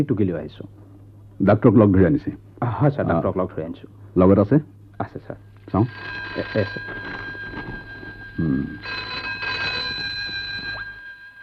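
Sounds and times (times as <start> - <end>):
speech: 0.0 - 0.8, 1.4 - 7.2, 8.4 - 9.1
telephone ringing in an office: 5.7 - 11.4.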